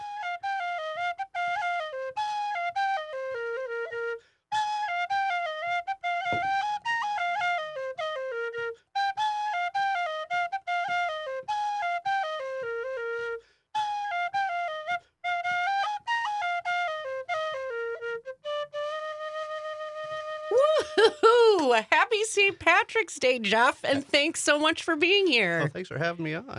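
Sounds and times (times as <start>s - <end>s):
Irish tin whistle playing a lively jig-like melody: 0.0s - 21.6s
laughter: 20.5s - 21.8s, 25.6s - 26.4s
speech: 21.0s - 26.5s.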